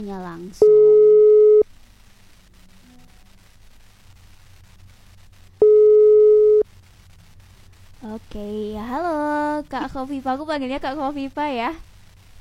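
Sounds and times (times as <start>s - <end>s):
speech: 0.0s - 1.1s, 8.0s - 11.9s
faint telephone line static: 0.0s - 12.4s
telephone ringback tone while placing a call: 0.6s - 1.6s, 5.6s - 6.6s.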